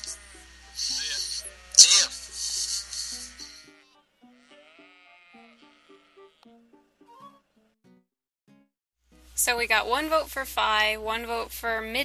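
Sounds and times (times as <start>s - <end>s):
burst of broadband noise: 0.0s - 3.6s
sheep bleating: 0.0s - 6.6s
speech: 9.4s - 12.0s.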